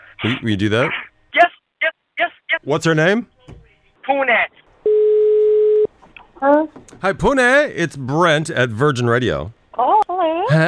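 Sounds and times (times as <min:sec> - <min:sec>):
speech: 0:00.2 - 0:01.5, 0:02.6 - 0:03.3, 0:06.4 - 0:09.9, 0:10.5 - 0:10.6
telephone ringing tone while placing a call: 0:04.9 - 0:05.9.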